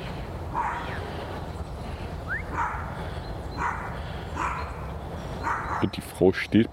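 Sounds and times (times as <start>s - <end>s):
steady low rumbling noise: 0.0s - 6.7s
dog barking: 0.6s - 0.9s, 2.5s - 2.9s, 3.6s - 4.8s, 5.4s - 6.0s
speech: 5.8s - 6.7s.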